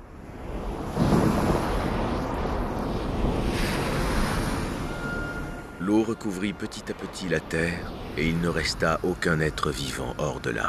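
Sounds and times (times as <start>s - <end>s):
gusts of wind buffeting the microphone: 0.0s - 5.0s
ocean waves crashing and surging: 0.0s - 10.6s
speech: 5.9s - 10.6s.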